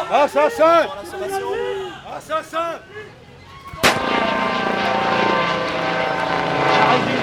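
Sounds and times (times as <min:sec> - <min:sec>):
speech: 0:00.2 - 0:01.6, 0:02.2 - 0:03.2
sharp bang: 0:03.8 - 0:07.2
SAMU emergency medical helicopter passing overhead: 0:04.0 - 0:07.2.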